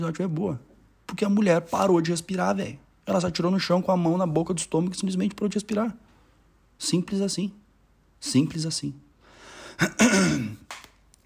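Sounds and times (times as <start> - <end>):
speech: 0.0 - 6.0, 6.8 - 7.6, 8.2 - 9.0, 9.8 - 10.8
person coughing: 9.7 - 10.7
raspy throat clearing: 9.8 - 10.7.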